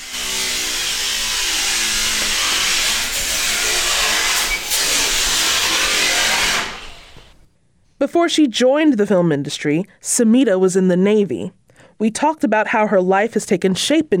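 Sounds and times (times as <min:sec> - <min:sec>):
power tool grinding whine cutting up scrap metal indoors: 0:00.0 - 0:07.4
speech: 0:08.0 - 0:14.1.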